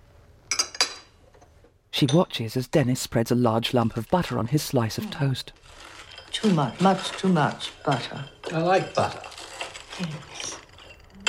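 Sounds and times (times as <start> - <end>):
china and cutlery clinking at a breakfast table: 2.0 - 2.5, 3.9 - 11.2
speech: 2.0 - 9.4, 10.0 - 10.6.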